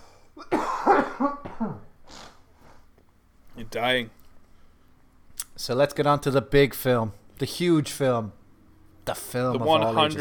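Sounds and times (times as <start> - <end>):
harsh cough: 0.4 - 2.4
speech: 3.7 - 4.2, 5.6 - 8.4, 9.1 - 10.1.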